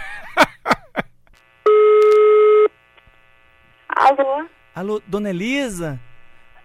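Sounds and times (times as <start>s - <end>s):
telephone line clicks and bursts while redialing: 2.0s - 2.3s
speech: 4.1s - 6.1s.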